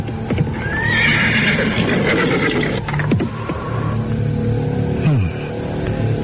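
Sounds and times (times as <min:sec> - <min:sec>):
horse hooves rumbling while being ridden: 0:00.0 - 0:06.2
horse neighing as it is reined in: 0:00.5 - 0:04.0.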